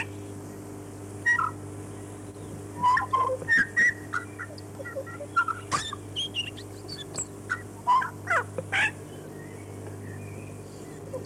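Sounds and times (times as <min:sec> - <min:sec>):
Chatham Island tui singing: 0:01.2 - 0:11.2.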